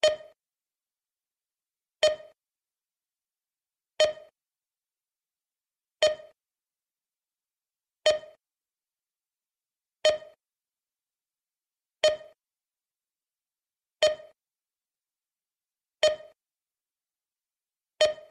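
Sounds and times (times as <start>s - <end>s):
timer beep: 0.0s - 0.4s, 2.0s - 2.4s, 4.0s - 4.3s, 6.0s - 6.4s, 8.1s - 8.4s, 10.0s - 10.4s, 12.0s - 12.4s, 14.0s - 14.4s, 16.0s - 16.4s, 18.0s - 18.2s.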